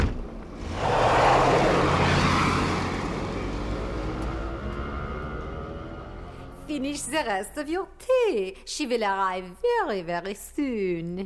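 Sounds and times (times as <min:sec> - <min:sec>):
car engine driving off to follow a taxi: 0:00.6 - 0:07.2
speech: 0:06.8 - 0:11.2.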